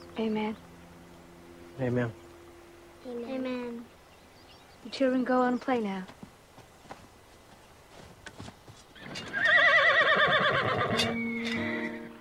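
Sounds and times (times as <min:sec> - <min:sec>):
speech: 0:00.2 - 0:00.7, 0:01.8 - 0:02.2, 0:03.0 - 0:04.0, 0:04.8 - 0:06.2
hoof clops and shuffling steps on hard ground: 0:04.9 - 0:12.0
horse whinnying: 0:09.0 - 0:12.0.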